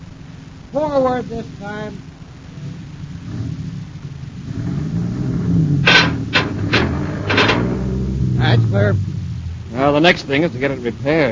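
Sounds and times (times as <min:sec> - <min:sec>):
truck engine rumbling low: 0:00.0 - 0:11.2
speech: 0:00.7 - 0:02.1, 0:08.4 - 0:09.1, 0:09.8 - 0:11.2
heavy metal beam scraping as it is dragged by a truck: 0:04.6 - 0:08.4.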